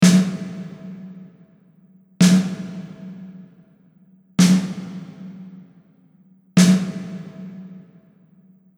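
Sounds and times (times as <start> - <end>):
snare drum with convolution reverb: 0.0 - 1.6, 2.2 - 3.6, 4.4 - 5.8, 6.6 - 8.1.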